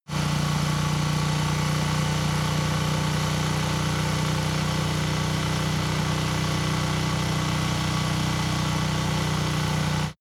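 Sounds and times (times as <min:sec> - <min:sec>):
motorcycle engine at low constant rpm ascending: 0:00.0 - 0:10.1.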